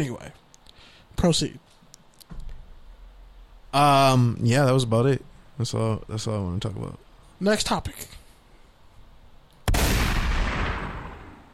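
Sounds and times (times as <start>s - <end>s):
speech: 0.0s - 0.4s, 1.2s - 1.6s, 3.7s - 8.2s
shotgun blast sound effect: 9.7s - 11.5s.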